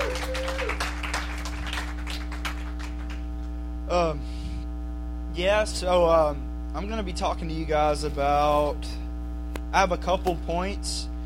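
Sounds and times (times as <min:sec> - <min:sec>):
rising whoop: 0:00.0 - 0:01.0
scattered cheering: 0:00.0 - 0:03.2
crowd applause: 0:00.0 - 0:03.3
steady electrical hum: 0:00.0 - 0:11.2
speech: 0:05.4 - 0:09.0, 0:09.7 - 0:11.1.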